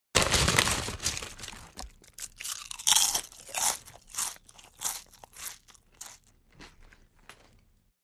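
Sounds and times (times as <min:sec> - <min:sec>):
potato chips bag rustling: 0:00.2 - 0:03.0.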